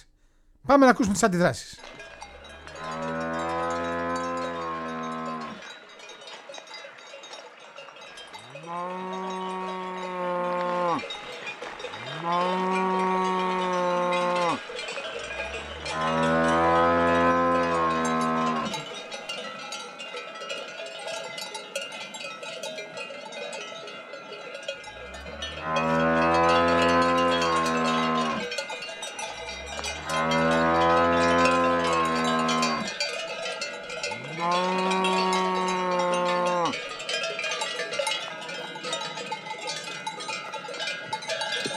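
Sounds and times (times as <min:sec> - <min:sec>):
speech: 0:00.0 - 0:02.0
cowbells clanking: 0:00.7 - 0:41.7
several cows mooing: 0:02.2 - 0:05.6, 0:08.5 - 0:11.2, 0:11.9 - 0:18.9, 0:24.9 - 0:28.6, 0:29.2 - 0:33.0, 0:34.0 - 0:36.9.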